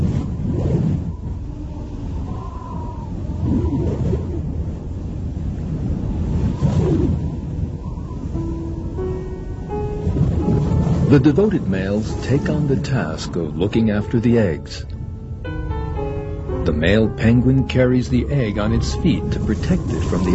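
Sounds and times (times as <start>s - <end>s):
strong wind blowing ice and snow: 0.0s - 20.3s
speech: 11.1s - 15.0s, 16.7s - 20.3s.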